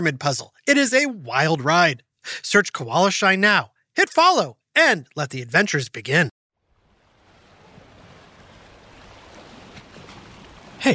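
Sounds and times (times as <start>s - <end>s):
speech: 0.0s - 6.3s
ocean waves at a beach: 6.6s - 10.9s.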